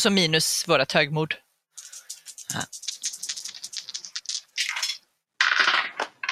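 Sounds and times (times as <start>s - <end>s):
speech: 0.0s - 1.4s, 2.5s - 2.8s
dice rolled across a hard surface in a game: 1.8s - 6.3s.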